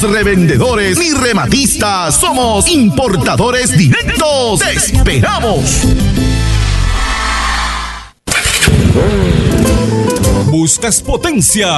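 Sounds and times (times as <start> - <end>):
speech: 0.0 - 6.3, 9.0 - 9.7, 10.5 - 11.7
motorcycle engine idling, starting and revving: 5.8 - 10.1.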